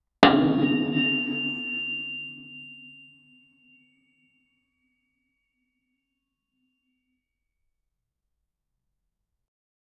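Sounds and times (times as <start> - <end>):
powerful blacksmith hammering: 0.2 - 2.7.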